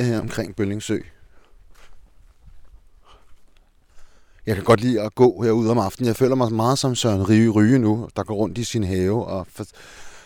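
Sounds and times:
speech: 0.0s - 1.2s, 4.5s - 10.0s
jogger footsteps outdoors around Bølling Lake in Denmark: 0.2s - 4.5s.

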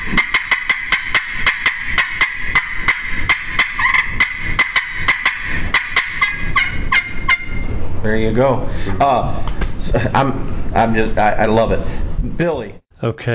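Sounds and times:
turkey hen cutting with sharp staccato clucks: 0.0s - 7.7s
speech: 8.1s - 13.3s.

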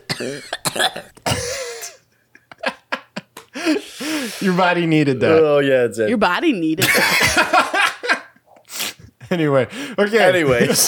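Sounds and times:
person coughing: 0.0s - 2.0s
speech: 0.2s - 1.2s, 3.6s - 7.6s, 9.3s - 10.8s
laughter: 1.5s - 4.8s, 6.8s - 8.4s, 9.0s - 10.8s.

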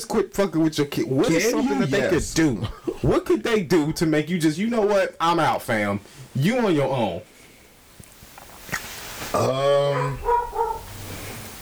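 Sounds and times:
speech: 0.0s - 7.3s, 9.3s - 10.4s
dog barking: 9.8s - 11.1s.

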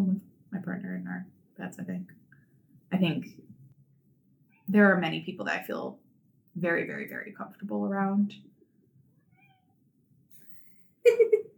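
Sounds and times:
speech: 3.0s - 3.4s, 4.7s - 6.0s, 6.6s - 8.5s, 11.1s - 11.5s
cat meowing behind a door: 9.3s - 9.7s.

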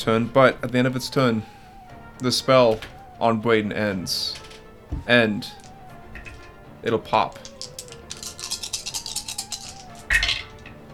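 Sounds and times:
speech: 0.0s - 1.6s, 2.2s - 5.6s, 6.8s - 7.5s
many dice tumbling and clicking together: 5.5s - 6.6s, 7.2s - 10.8s.

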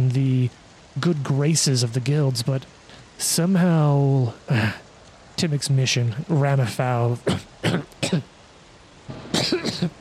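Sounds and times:
speech: 0.5s - 4.8s, 5.4s - 8.3s, 9.5s - 9.9s
man acting out a coughing fit: 7.2s - 8.3s, 9.4s - 9.9s.

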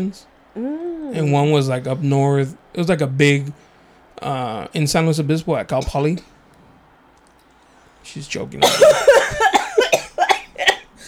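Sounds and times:
speech: 0.0s - 6.3s, 8.0s - 9.1s
person coughing while laughing: 8.6s - 11.0s.

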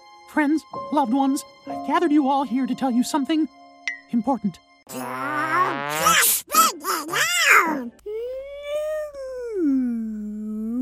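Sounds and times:
speech: 0.3s - 6.3s, 7.1s - 8.1s
person mimicking whale song with wavering vocal moans: 4.9s - 10.8s.

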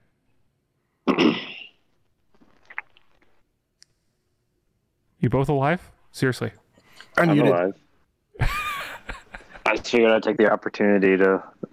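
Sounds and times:
person coughing: 1.0s - 1.8s
speech: 5.2s - 7.8s, 9.7s - 11.6s
laughter: 8.4s - 9.8s.

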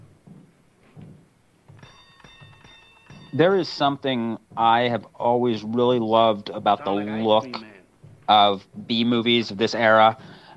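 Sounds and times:
dull thuds: 0.0s - 10.5s
bell rung at a door: 1.7s - 4.3s
speech: 3.3s - 7.7s, 8.3s - 10.3s.

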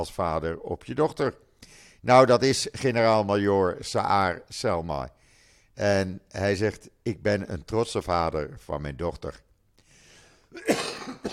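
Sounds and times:
speech: 0.0s - 5.2s, 5.8s - 9.5s, 10.5s - 11.3s
loud rough cough: 10.5s - 11.3s.

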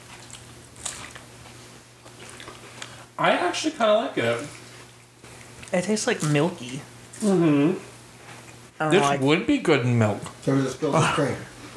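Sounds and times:
person biting and chewing raw flour: 0.0s - 3.2s, 4.4s - 7.4s
speech: 3.2s - 4.6s, 5.7s - 7.9s, 8.8s - 11.5s.

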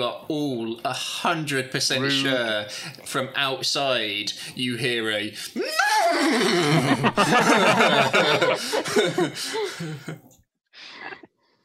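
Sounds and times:
speech: 0.0s - 10.2s
person's voice imitating a horse neighing: 2.0s - 2.6s, 5.6s - 6.8s
laughter: 5.6s - 10.3s.

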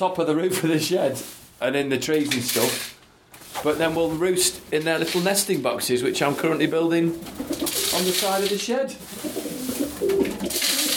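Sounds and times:
speech: 0.0s - 3.0s, 3.6s - 10.7s
pigeons being fed cooing: 7.2s - 7.9s, 9.1s - 10.9s.

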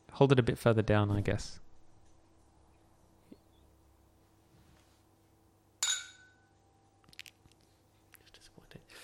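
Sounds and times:
speech: 0.2s - 1.6s
wine glasses clinking together: 5.8s - 6.6s.

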